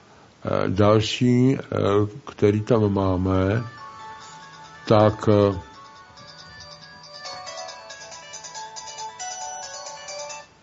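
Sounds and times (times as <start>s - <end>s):
speech: 0.4s - 3.8s, 4.9s - 5.7s
mobile phone ringtone for an incoming call: 3.5s - 10.6s.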